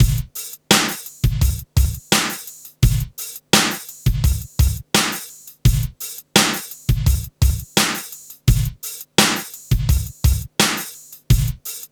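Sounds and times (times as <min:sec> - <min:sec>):
funky hip hop music: 0:00.0 - 0:11.8.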